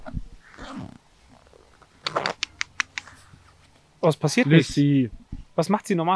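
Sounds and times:
soft rustling and low shuffling: 0.4 - 5.6
bird claws clicking and scraping while climbing cage wire bars: 1.3 - 3.5
speech: 4.0 - 6.1.

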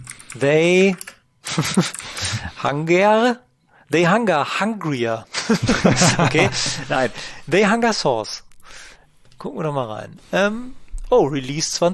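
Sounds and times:
computer keyboard typing: 0.0 - 2.3
speech: 0.4 - 1.0, 1.6 - 8.4, 9.4 - 11.9
laughter: 1.4 - 2.5, 5.3 - 7.3.

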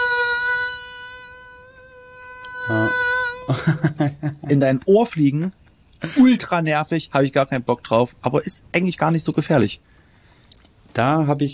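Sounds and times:
voice imitating a mosquito with a high-pitched whining buzz: 1.3 - 3.5
speech: 2.7 - 9.9, 11.0 - 11.5
laughter: 3.5 - 4.6.

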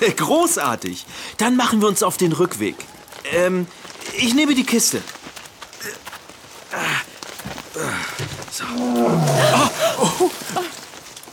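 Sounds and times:
speech: 0.0 - 5.2, 7.8 - 10.8
tiger roaring and growling: 8.6 - 10.0
laughter: 9.3 - 10.8.

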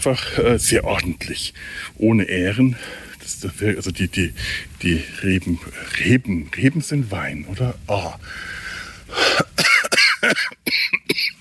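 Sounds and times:
speech: 0.0 - 9.4
person with a head cold coughing: 9.2 - 11.3.

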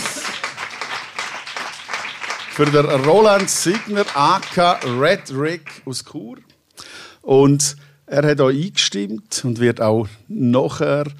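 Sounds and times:
crowd applauding: 0.0 - 6.0
speech: 2.6 - 6.5, 7.2 - 11.1.

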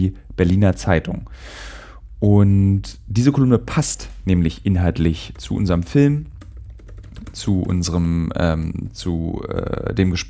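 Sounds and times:
speech: 0.0 - 6.3, 7.3 - 10.2
steady low hum: 0.0 - 10.2
rapid typing on a computer keyboard: 5.1 - 8.4, 10.0 - 10.2.

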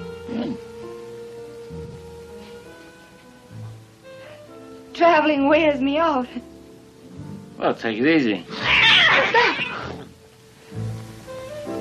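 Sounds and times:
faint steady hum: 0.0 - 11.7
speech: 5.0 - 6.5, 7.6 - 9.6
cat yowling: 8.5 - 10.1.

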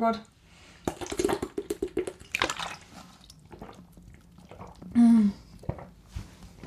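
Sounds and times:
speech: 0.0 - 0.4
person gulping water from a bottle: 0.8 - 6.6
small liquid splash: 0.9 - 4.8.

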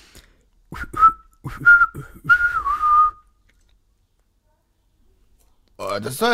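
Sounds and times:
person whistling imitating birdsong: 0.7 - 3.4
speech: 1.5 - 2.1, 6.0 - 6.3.

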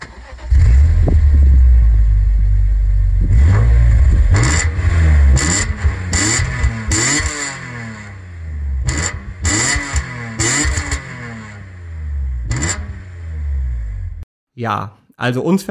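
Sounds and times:
BMW car engine starting and revving: 0.0 - 14.2
speech: 14.6 - 15.7.

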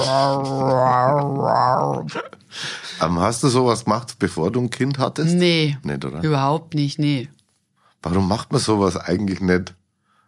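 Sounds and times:
person imitating dog begging for a biscuit with droning didgeridoo-like whine: 0.0 - 2.2
speech: 0.0 - 7.4, 8.0 - 9.8.

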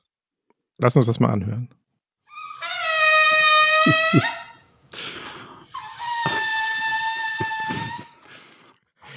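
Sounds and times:
speech: 0.8 - 1.8, 3.9 - 4.4
air squealing out of an inflated balloon: 2.3 - 9.1
laughter: 3.7 - 4.6.

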